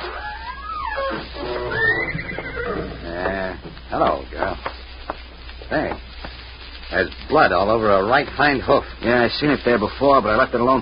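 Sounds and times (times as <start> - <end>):
horse whinnying in a stall: 0.1 - 3.3
speech: 7.3 - 10.7.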